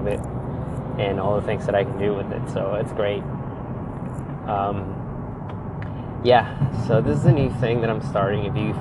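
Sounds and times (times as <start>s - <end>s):
speech: 0.0s - 0.4s, 1.0s - 3.4s, 4.5s - 5.0s, 6.2s - 8.7s
road noise inside a moving low-riding manual car: 0.0s - 8.7s
voiced sound: 1.0s - 3.2s, 4.5s - 5.0s, 5.6s - 8.7s.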